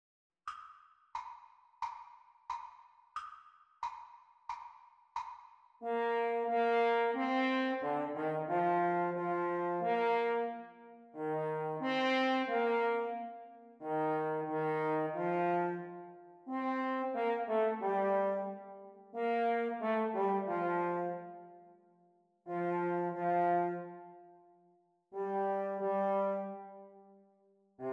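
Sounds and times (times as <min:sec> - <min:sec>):
French horn duet playalong: 0:05.8 - 0:21.6, 0:22.5 - 0:24.2, 0:25.1 - 0:27.1.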